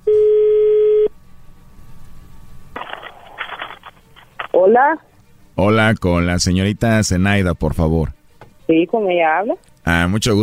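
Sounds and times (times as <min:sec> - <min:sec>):
telephone tone while dialing: 0:00.0 - 0:01.1
crackly band-limited phone-line noise: 0:02.8 - 0:05.1
speech: 0:04.7 - 0:10.4.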